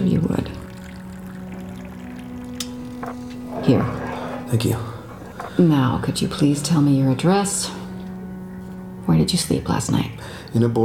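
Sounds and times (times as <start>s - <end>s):
water poured into a glass: 0.0s - 5.4s
speech: 3.7s - 4.9s, 5.6s - 7.8s, 9.1s - 10.8s.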